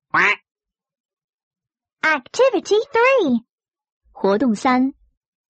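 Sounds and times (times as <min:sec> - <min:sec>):
short nasal duck quack: 0:00.1 - 0:00.4
speech: 0:02.0 - 0:03.5, 0:04.2 - 0:05.0.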